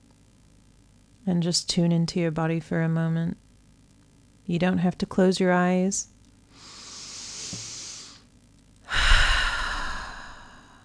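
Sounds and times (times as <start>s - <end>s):
speech: 1.3s - 3.4s, 4.5s - 6.7s
deep breath: 6.5s - 8.2s, 8.9s - 10.8s.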